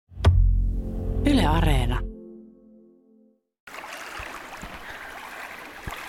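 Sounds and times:
brief musical tone: 0:00.6 - 0:03.4
speech: 0:01.5 - 0:02.1
small lake waves lapping against the shore: 0:03.7 - 0:06.0.

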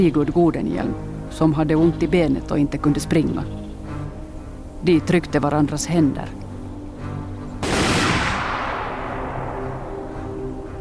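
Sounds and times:
speech: 0:00.0 - 0:03.6, 0:04.8 - 0:06.4
rifle volley fired at prisoners: 0:07.6 - 0:10.2
long rumble of rifle volley: 0:07.6 - 0:10.8.

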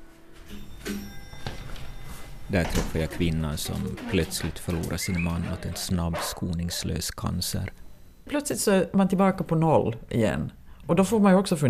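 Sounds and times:
doorbell ringing at an apartment door in a high-rise building: 0:00.4 - 0:03.8
shuffling sounds: 0:01.3 - 0:06.9
speech: 0:02.5 - 0:11.6.

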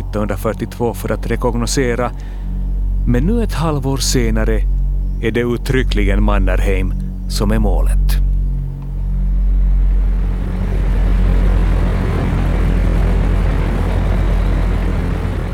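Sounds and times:
small transport plane flying at high altitude over the Finnish border in 1943: 0:00.0 - 0:15.5
speech: 0:00.1 - 0:02.5, 0:03.1 - 0:08.3.

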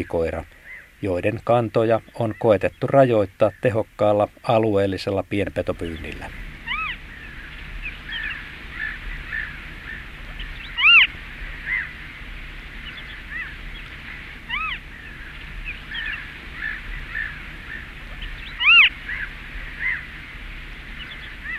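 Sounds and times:
Western Marsh Harrier mewing calls: 0:00.0 - 0:01.2, 0:05.7 - 0:21.5
speech: 0:00.0 - 0:06.5
small birds chirping: 0:00.0 - 0:21.5.

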